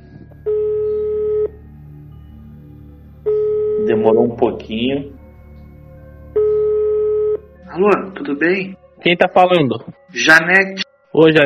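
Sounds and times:
electronic ringback tone of a phone call to a home landline: 0.4 - 1.6, 3.2 - 4.3, 6.3 - 7.5
speech: 4.0 - 5.2, 7.8 - 11.4.

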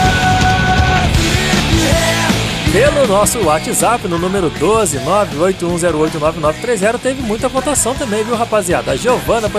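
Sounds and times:
grunge singer screaming in long strained notes: 0.0 - 3.6
grunge rock with heavy distorted guitars and drums: 0.0 - 9.5
speech: 2.8 - 9.5.

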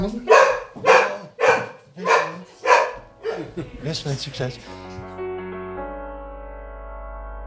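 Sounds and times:
speech: 0.0 - 0.3, 3.6 - 4.8
dog barking: 0.0 - 3.7
laughter: 1.2 - 5.1.

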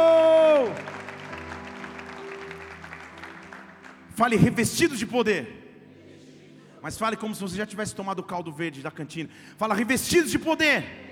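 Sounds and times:
audience applauding: 0.0 - 4.8
speech: 4.2 - 5.6, 6.8 - 11.0.

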